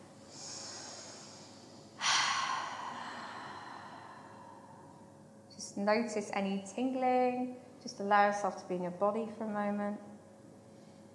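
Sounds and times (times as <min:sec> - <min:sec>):
deep breathing in a guided relaxation exercise: 0:00.3 - 0:05.3
speech: 0:05.7 - 0:10.1.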